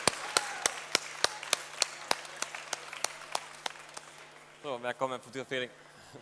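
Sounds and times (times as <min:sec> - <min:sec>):
audience clapping for a team at an awards event: 0:00.0 - 0:04.8
faint hum: 0:00.0 - 0:06.1
speech: 0:04.6 - 0:06.1.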